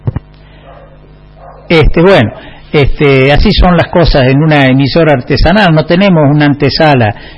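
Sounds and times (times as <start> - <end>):
dogs barking as a visitor arrives: 0.6 - 2.5
speech: 1.7 - 7.3.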